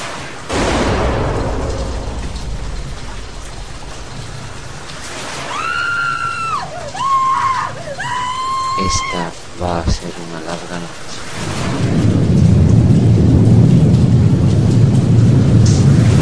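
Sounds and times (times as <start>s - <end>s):
steady rain: 0.0s - 16.1s
single loud gunshot inside a house: 0.5s - 5.5s
woman's high wavering scream: 5.4s - 9.3s.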